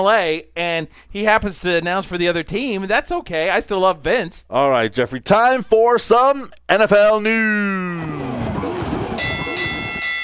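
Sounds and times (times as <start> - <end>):
speech: 0.0 - 8.4
bell ringing as a sports-news cue: 9.2 - 10.2.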